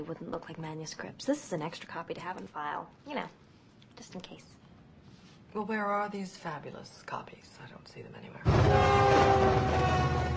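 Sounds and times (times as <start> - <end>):
speech: 0.0 - 4.6, 5.5 - 10.3
train rumbling past: 8.5 - 10.3.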